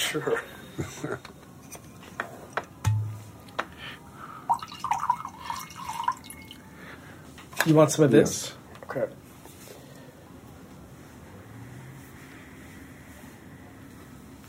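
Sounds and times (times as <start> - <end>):
speech: 0.1 - 1.4, 7.6 - 9.2
wine trickling and dripping into a glass: 4.5 - 6.7.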